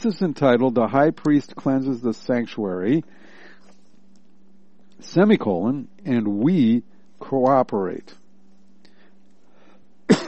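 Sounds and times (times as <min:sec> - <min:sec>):
speech: 0:00.0 - 0:03.2, 0:05.0 - 0:08.2
faint low hum: 0:00.0 - 0:10.2
speaker coughing: 0:10.1 - 0:10.2.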